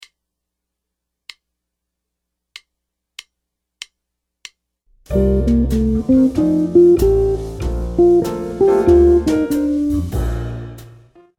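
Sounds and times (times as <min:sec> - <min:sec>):
jazz guitar playing two-five-one licks: 0:05.1 - 0:10.4.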